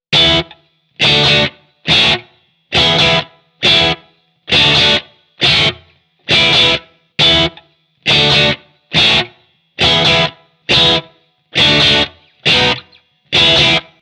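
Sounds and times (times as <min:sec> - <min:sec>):
Fender Stratocaster electric guitar with Hiwatt-style tone: 0:00.1 - 0:14.0.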